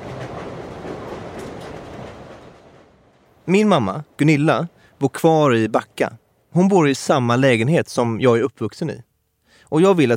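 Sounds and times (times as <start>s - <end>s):
moving train interior rumbling roar: 0.0s - 5.1s
speech: 3.5s - 9.1s, 9.7s - 10.1s.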